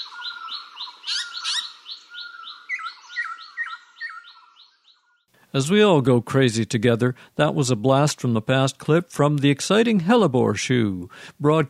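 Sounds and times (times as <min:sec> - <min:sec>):
birds singing in an overlapping chorus of chirps and trills: 0:00.0 - 0:05.3
speech: 0:05.5 - 0:11.6.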